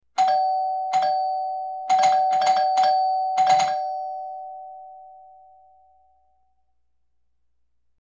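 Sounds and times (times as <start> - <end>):
doorbell quick repeated ding: 0.2 - 6.0.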